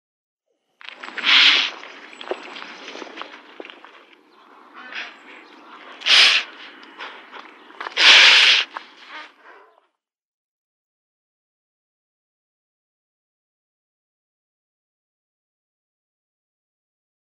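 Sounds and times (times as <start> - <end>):
young ostrich calling: 1.0 - 9.8.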